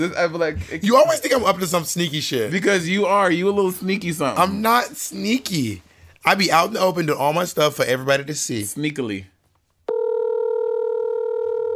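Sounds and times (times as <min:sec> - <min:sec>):
speech: 0:00.0 - 0:09.4
electronic phone tone from a call placed on speakerphone: 0:09.9 - 0:11.7.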